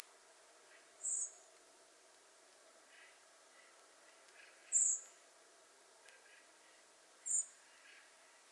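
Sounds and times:
soft background hiss: 0:00.0 - 0:08.4
Common blackbird Turdus merula giving thin very high calls: 0:00.7 - 0:01.5, 0:02.9 - 0:05.1, 0:06.1 - 0:08.1.

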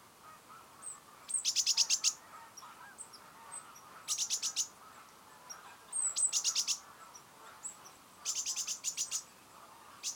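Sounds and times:
great tit Parus major giving harsh buzzy rattled calls: 0:01.3 - 0:03.2, 0:04.0 - 0:09.3, 0:10.0 - 0:10.1.

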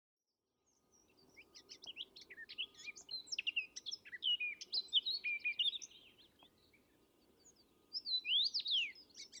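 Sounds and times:
Eurasian blackcap Sylvia atricapilla singing: 0:01.3 - 0:06.5, 0:07.5 - 0:09.3.

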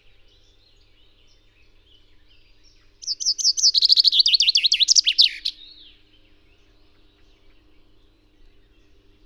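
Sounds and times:
common chaffinch Fringilla coelebs song: 0:02.2 - 0:06.1.

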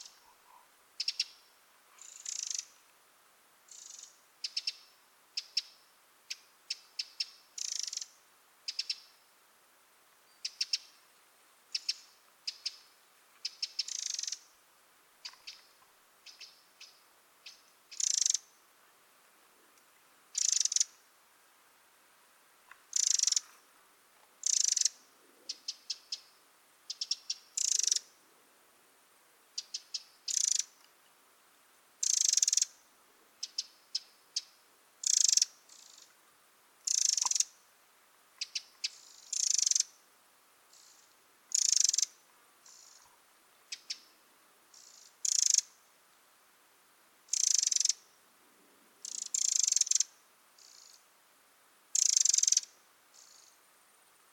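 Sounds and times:
Troglodytes troglodytes: 0:00.0 - 0:02.8, 0:03.7 - 0:09.3, 0:11.7 - 0:14.5, 0:15.2 - 0:18.6, 0:20.3 - 0:21.0, 0:22.7 - 0:23.6, 0:24.4 - 0:28.2, 0:29.6 - 0:30.9, 0:32.0 - 0:32.8, 0:33.4 - 0:36.2, 0:36.8 - 0:37.6, 0:38.4 - 0:40.0, 0:40.7 - 0:45.8, 0:47.3 - 0:48.2, 0:49.0 - 0:51.0, 0:51.9 - 0:53.6.

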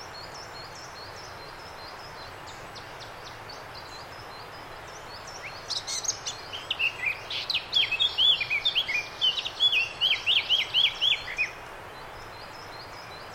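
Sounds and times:
Eurasian blackcap Sylvia atricapilla singing: 0:00.0 - 0:13.3
background hiss: 0:00.0 - 0:13.3.

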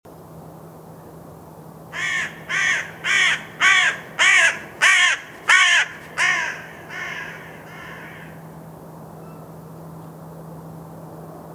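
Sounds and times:
Carrion crow cawing: 0:02.0 - 0:08.5.

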